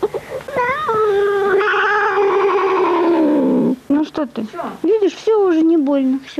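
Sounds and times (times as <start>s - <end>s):
cat yowling during injection: 0.6s - 3.7s
speech: 4.2s - 6.3s.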